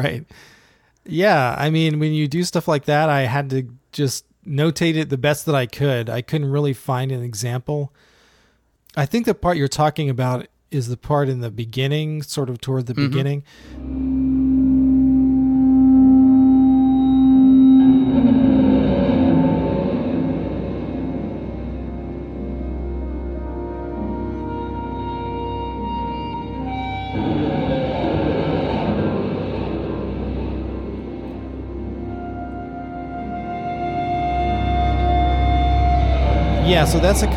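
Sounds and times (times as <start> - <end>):
speech: 0.0 - 8.1, 9.0 - 14.3, 36.8 - 37.3
heavily distorted electric guitar with echo delay and wah-wah pedal: 13.8 - 37.3.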